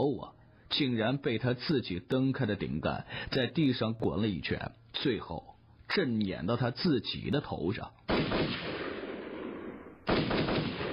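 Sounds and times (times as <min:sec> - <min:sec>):
speech: 0:00.0 - 0:08.7
gunfire: 0:08.1 - 0:10.9.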